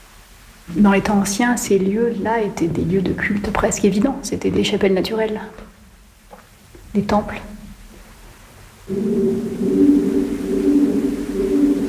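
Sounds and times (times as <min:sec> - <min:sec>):
speech: 0:00.7 - 0:05.7, 0:06.9 - 0:07.6, 0:08.9 - 0:10.0
pigeons cooing echoing in a cave: 0:08.9 - 0:11.8.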